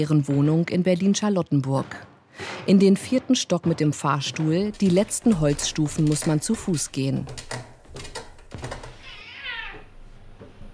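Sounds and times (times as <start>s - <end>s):
speech: 0.0s - 7.7s
clicks and knocks indoors: 3.6s - 9.2s
cat meowing indoors: 9.0s - 9.9s.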